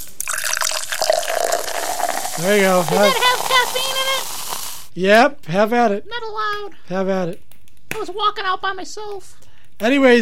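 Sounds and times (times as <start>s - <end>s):
drink pouring into a glass: 0.0s - 4.9s
speech: 2.4s - 4.3s, 5.0s - 10.2s.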